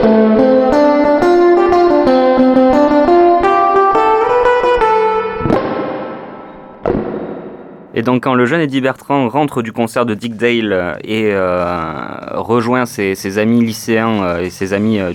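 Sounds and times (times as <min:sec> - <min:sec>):
twangy electric guitar run with wet metallic spring reverb: 0:00.0 - 0:08.2
loud splashy spring reverb crashes: 0:05.4 - 0:08.4
speech: 0:08.1 - 0:15.1.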